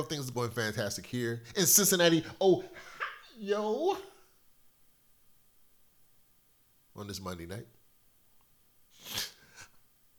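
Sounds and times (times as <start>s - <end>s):
speech: 0.0s - 4.1s, 7.0s - 7.8s
person sniffling: 8.9s - 9.8s.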